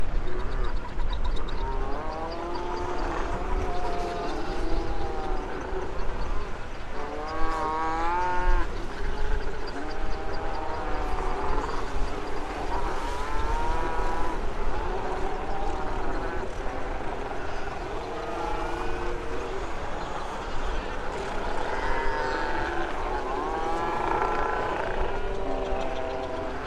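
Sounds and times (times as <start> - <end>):
northern fur seal rookery: 0.0 - 26.6
wind: 0.0 - 26.6.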